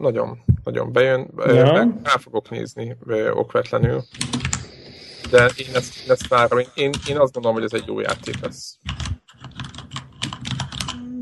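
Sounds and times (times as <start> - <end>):
speech: 0.0 - 9.0
typing on a mechanical keyboard: 4.0 - 11.1.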